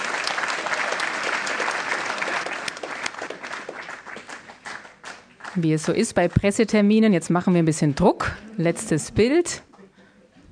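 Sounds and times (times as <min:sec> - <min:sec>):
church audience clapping for newly confirmed young people: 0:00.0 - 0:06.7
speech: 0:05.6 - 0:09.7.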